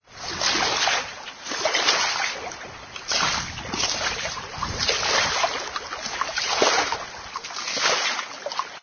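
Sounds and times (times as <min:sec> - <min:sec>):
water splashing from swimming: 0:00.0 - 0:08.8.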